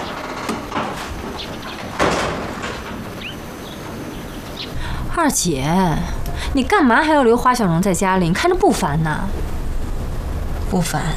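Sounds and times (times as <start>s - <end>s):
door being shut: 0.0s - 4.8s
speech: 5.2s - 9.6s, 10.7s - 11.1s.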